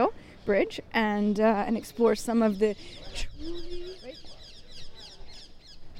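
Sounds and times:
speech: 0.0 - 4.2
monk parakeets chattering in shrill scratchy squawks: 2.4 - 5.9.

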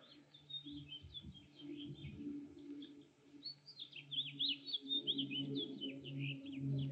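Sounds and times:
birds chirping and tweeting outdoors: 0.0 - 6.8.

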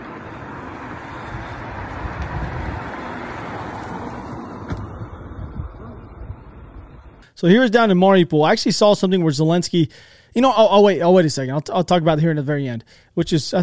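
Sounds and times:
several large vehicles idling on a road: 0.0 - 7.2
broad outdoor wash of noise: 0.0 - 13.6
speech: 7.4 - 13.6.

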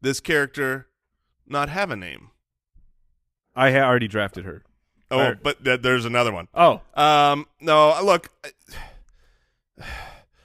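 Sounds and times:
speech: 0.0 - 0.9, 1.5 - 2.3, 3.6 - 8.9, 9.8 - 10.1
loud breathy exhales: 8.7 - 10.4.

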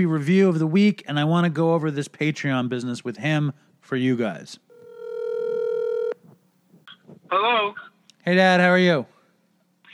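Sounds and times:
speech: 0.0 - 4.6, 7.3 - 9.1
electronic phone-line tone while a call is being placed: 4.7 - 6.2.

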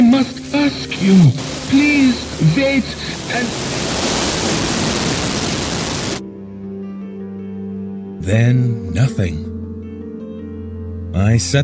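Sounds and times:
loud dense radio static: 0.0 - 6.2
speech: 0.2 - 3.9, 8.2 - 9.5, 11.2 - 11.6.

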